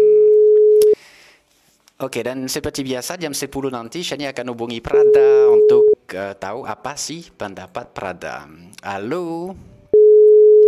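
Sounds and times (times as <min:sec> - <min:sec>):
electronic telephone ringing tone of an outgoing phone call: 0:00.0 - 0:01.0, 0:10.0 - 0:10.6
speech: 0:02.0 - 0:09.7.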